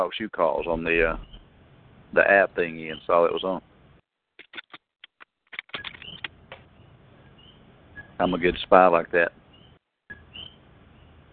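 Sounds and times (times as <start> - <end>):
speech: 0.0 - 1.4, 2.1 - 3.7, 8.2 - 9.4
low steady hiss: 0.0 - 4.0, 6.3 - 9.4
pet bird chirping: 0.6 - 1.4, 5.8 - 8.3, 9.5 - 11.2.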